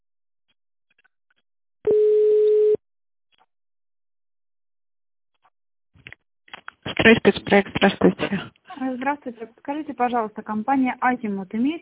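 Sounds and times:
telephone line tone while a call is being transferred: 0:01.9 - 0:02.8
speech: 0:07.1 - 0:11.8.

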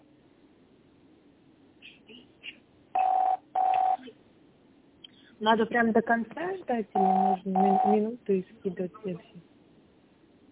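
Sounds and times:
telephone keypad dialing beeps: 0:03.0 - 0:04.0, 0:07.0 - 0:08.0
speech: 0:05.4 - 0:09.5.

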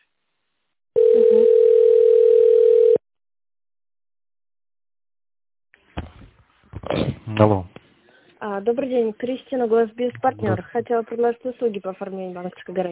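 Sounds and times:
telephone tone while a call is being transferred: 0:01.0 - 0:03.0
speech: 0:07.4 - 0:07.7, 0:08.6 - 0:12.9.

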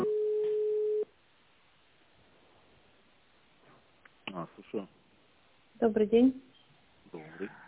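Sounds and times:
telephone line tones while a call is transferred: 0:00.1 - 0:01.1
speech: 0:05.8 - 0:06.4.

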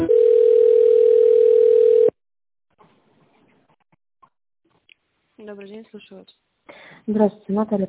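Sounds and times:
telephone tones while a call is put on hold and transferred: 0:00.1 - 0:02.2
speech: 0:05.5 - 0:07.8.

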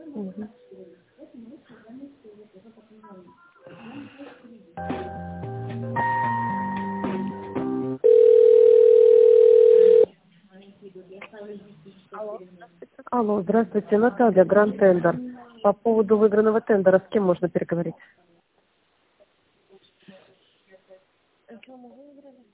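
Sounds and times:
speech: 0:00.2 - 0:00.7, 0:13.2 - 0:18.3
telephone ringback tone while connecting a call: 0:08.0 - 0:10.1.

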